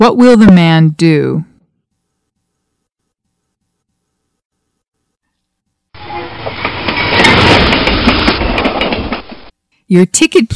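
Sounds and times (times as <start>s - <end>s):
speech: 0.0s - 1.5s, 9.9s - 10.5s
passenger train bound for Vienna rolling along rails: 6.0s - 9.6s.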